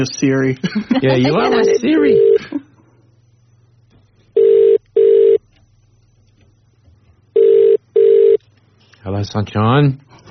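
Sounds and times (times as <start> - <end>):
speech: 0.0 - 2.6, 9.0 - 10.2
faint low hum: 0.0 - 10.2
laughter: 0.6 - 1.8
double-pulse ringback tones of an outgoing phone call: 4.4 - 5.4, 7.4 - 8.4.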